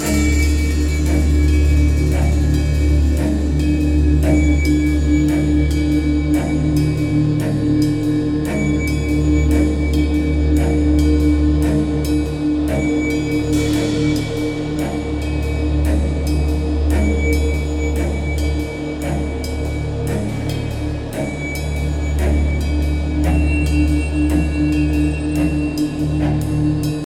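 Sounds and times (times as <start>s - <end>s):
suspense film music: 0.0s - 27.0s.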